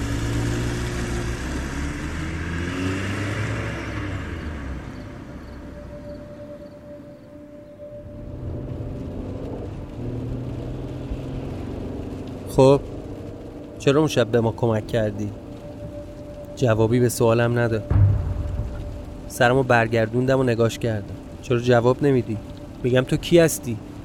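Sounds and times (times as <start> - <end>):
car engine rumbling as the car pulls away: 0.0 - 24.0
faint whine: 4.2 - 11.2, 12.6 - 24.0
speech: 12.6 - 12.9, 13.8 - 15.4, 16.6 - 18.0, 19.3 - 23.9.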